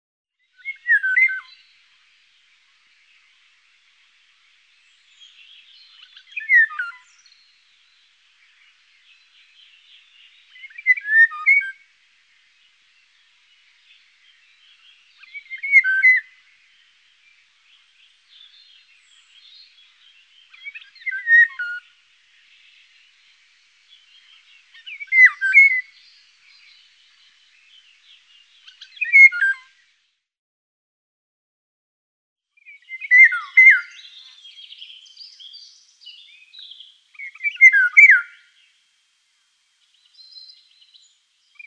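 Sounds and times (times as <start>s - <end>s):
Eurasian golden oriole singing: 0.4s - 30.0s, 32.6s - 38.9s, 39.8s - 41.6s.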